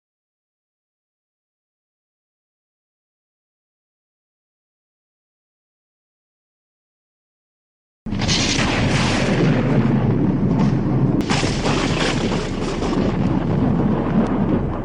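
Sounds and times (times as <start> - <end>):
horror lightning strike: 8.1 - 14.8.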